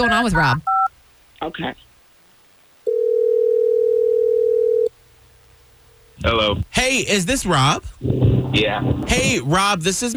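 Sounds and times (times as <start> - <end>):
speech: 0.0 - 0.7, 1.4 - 1.9, 6.2 - 10.1
telephone ringing tone: 2.9 - 4.9.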